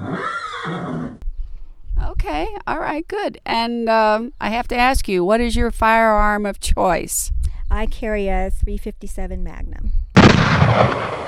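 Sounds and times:
11-year-old buckskin mare neighing: 0.0s - 1.2s
speech: 2.2s - 10.0s, 10.7s - 11.2s.

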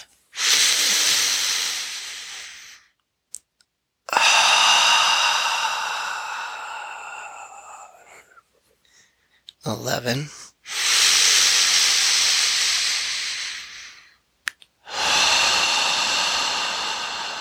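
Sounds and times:
slow exhaled breaths during a guided breathing exercise: 0.4s - 2.9s, 4.1s - 9.4s, 10.6s - 14.2s, 14.9s - 17.3s
speech: 9.7s - 10.4s.

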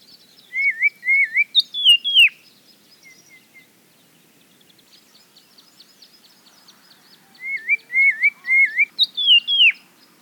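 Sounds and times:
Grey Tit whistled song near Cape Town, South Africa: 0.2s - 3.7s, 7.2s - 9.9s.

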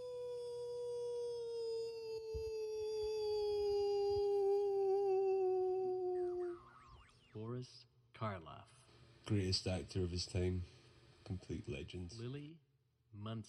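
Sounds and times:
person imitating a wolf howl: 0.0s - 6.8s
speech: 7.6s - 13.4s.

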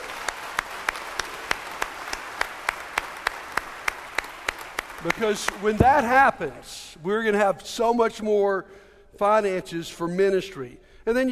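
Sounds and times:
crowd applauding: 0.0s - 6.2s
speech: 5.1s - 11.3s.

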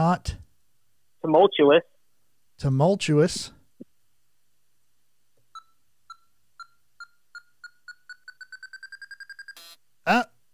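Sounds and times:
speech: 0.0s - 0.4s, 1.2s - 1.9s, 2.6s - 3.6s, 10.1s - 10.3s
game buzzer electronic beeps in a word game: 5.6s - 9.8s.

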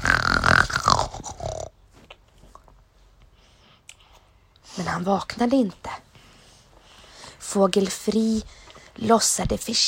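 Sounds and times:
loud rasping snore from a guard: 0.0s - 1.7s
speech: 4.8s - 5.9s, 7.6s - 9.8s.

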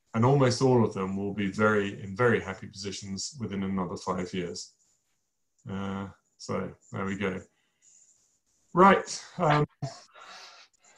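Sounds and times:
speech: 0.2s - 4.8s, 5.6s - 7.5s, 8.7s - 10.4s
person breathing audibly into the microphone: 10.0s - 10.9s.

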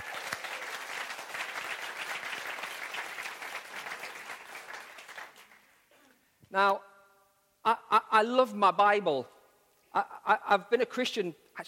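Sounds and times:
crowd applauding the dads: 0.0s - 5.8s
speech: 6.5s - 6.9s, 7.6s - 9.4s, 10.0s - 11.6s.

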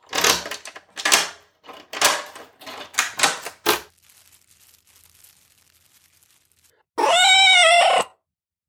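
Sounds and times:
sharp rustling and scraping bursts: 0.0s - 6.8s
cat meowing loudly: 7.0s - 8.2s.

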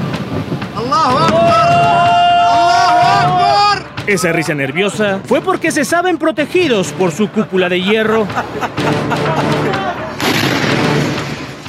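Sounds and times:
rocket explosions booming in the sky: 0.0s - 4.2s, 8.4s - 11.6s
people's voices: 0.7s - 11.0s
speech: 4.1s - 9.9s
laughter: 7.3s - 10.2s.

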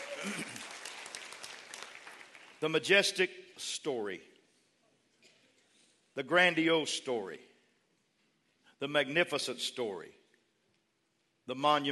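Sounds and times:
large group clapping in dense applause: 0.0s - 2.6s
speech: 0.2s - 0.6s, 2.6s - 4.3s, 6.2s - 7.5s, 8.8s - 10.2s, 11.5s - 11.8s.

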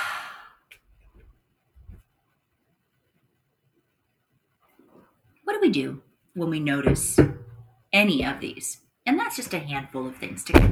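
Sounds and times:
deep breath: 0.0s - 0.8s
speech: 5.6s - 10.7s
soft thumps: 6.8s - 8.5s, 10.5s - 10.7s.

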